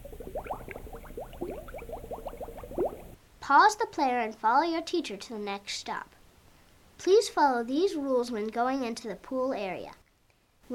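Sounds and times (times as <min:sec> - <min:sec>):
bubbling water cue sound: 0:00.0 - 0:03.2
speech: 0:03.5 - 0:06.2, 0:07.0 - 0:10.0.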